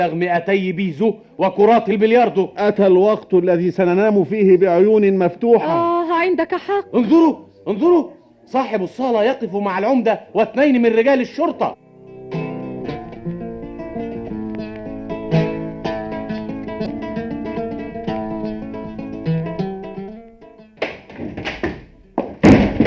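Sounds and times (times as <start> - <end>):
speech: 0.0 - 12.4
music playing: 0.0 - 22.3
door being slammed hard by an angry woman: 20.8 - 22.8.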